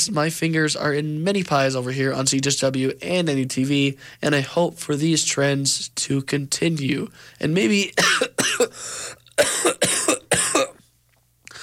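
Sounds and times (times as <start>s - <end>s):
speech: 0.0s - 10.0s
harsh, loud coughing: 8.0s - 10.9s.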